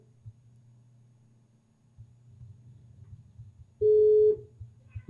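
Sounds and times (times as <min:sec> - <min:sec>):
ringback tone on an outgoing phone call: 0:03.8 - 0:04.4.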